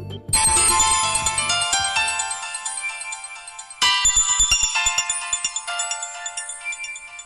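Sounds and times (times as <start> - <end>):
electronic Android phone ringtone for an incoming Skype voice call: 0.3 - 7.2.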